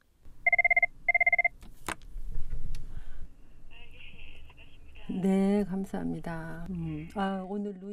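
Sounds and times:
crisis counseling hotline telephone ringing in warbling bursts: 0.5s - 1.5s
speech: 5.1s - 7.9s.

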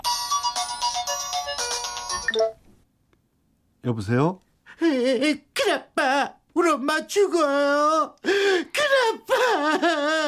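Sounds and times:
phone ringtone playing a bright rapid electronic melody: 0.0s - 2.6s
speech: 2.3s - 2.6s, 3.8s - 10.2s.

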